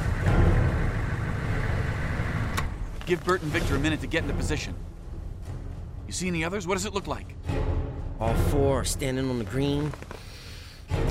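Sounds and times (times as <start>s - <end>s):
vehicle engine idling with low rumble: 0.0s - 3.0s
speech: 3.1s - 4.9s, 6.1s - 7.6s, 8.2s - 10.3s.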